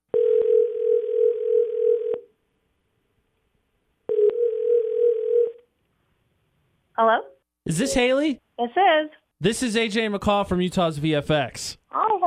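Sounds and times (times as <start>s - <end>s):
telephone line tone while a call is placed: 0.1s - 2.3s, 4.1s - 5.6s
speech: 7.0s - 12.2s.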